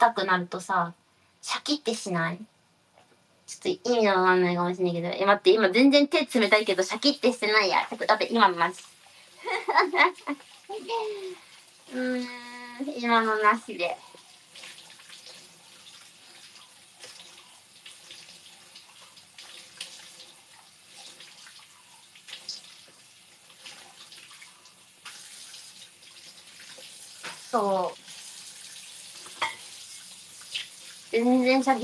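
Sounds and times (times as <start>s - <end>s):
speech: 0.0s - 2.5s, 3.5s - 14.1s, 27.5s - 28.0s, 31.1s - 31.8s
tap water running while a tea glass is washed: 5.6s - 31.8s
glass clinking: 29.4s - 29.6s.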